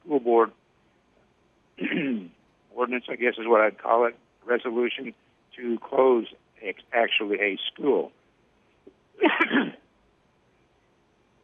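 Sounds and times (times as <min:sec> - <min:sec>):
person on a call clearing throat: 0:01.8 - 0:02.3, 0:09.2 - 0:09.8
speech: 0:02.9 - 0:08.2, 0:09.2 - 0:09.8.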